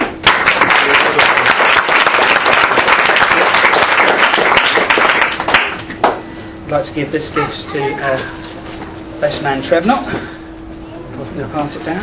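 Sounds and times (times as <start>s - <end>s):
wedding guests applauding: 0.0s - 6.2s
speech: 6.7s - 8.6s, 9.2s - 10.4s, 11.2s - 12.0s.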